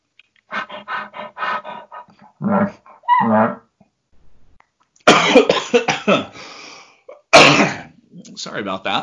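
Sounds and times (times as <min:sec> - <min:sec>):
speech: 0:02.4 - 0:03.6, 0:08.6 - 0:09.0
person coughing while raking: 0:05.1 - 0:06.4, 0:07.4 - 0:08.0.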